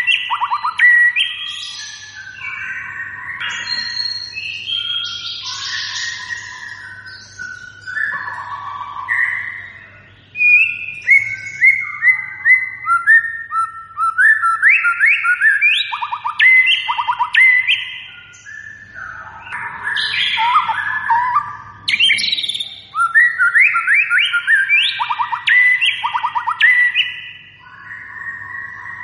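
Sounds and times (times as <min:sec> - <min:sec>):
white-rumped shama singing whistles and buzzy notes: 0:00.0 - 0:29.0.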